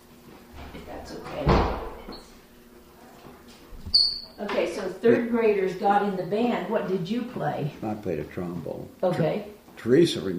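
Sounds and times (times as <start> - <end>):
door swinging shut with a solid thump: 1.3 - 2.0
speech: 4.0 - 10.3.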